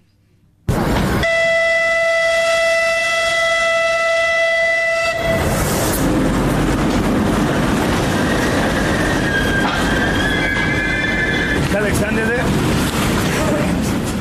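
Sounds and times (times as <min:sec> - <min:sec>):
passenger train rumbling past with clattering wheels: 0:00.6 - 0:14.1
passenger train horn: 0:01.2 - 0:05.6.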